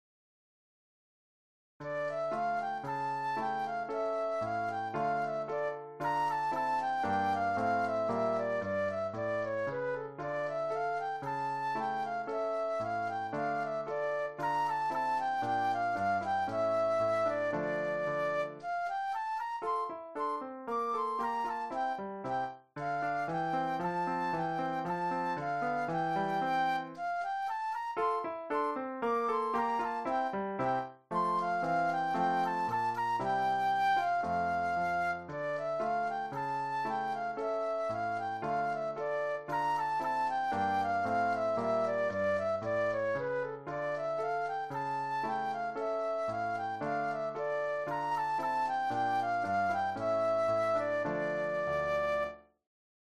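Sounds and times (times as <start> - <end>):
solo flute playing a classical gavotte: 1.8 - 52.6.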